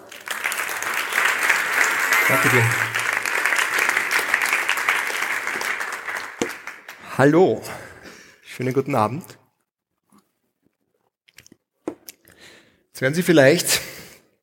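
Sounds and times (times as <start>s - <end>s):
room full of people applauding: 0.0s - 7.1s
person saying thank you: 2.2s - 3.0s
speech: 2.3s - 2.9s, 7.2s - 7.8s, 8.6s - 9.4s, 13.0s - 13.8s.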